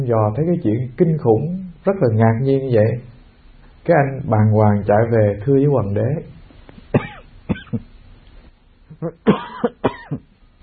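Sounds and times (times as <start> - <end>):
speech: 0.0 - 3.1, 3.8 - 7.1, 9.0 - 10.3
person coughing in harsh hacking bursts: 7.0 - 7.9, 9.0 - 10.3.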